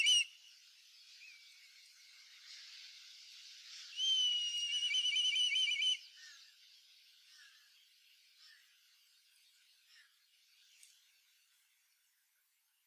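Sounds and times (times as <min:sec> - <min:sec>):
black kite wavering trilling whistled call: 0:00.0 - 0:00.3, 0:04.0 - 0:06.0.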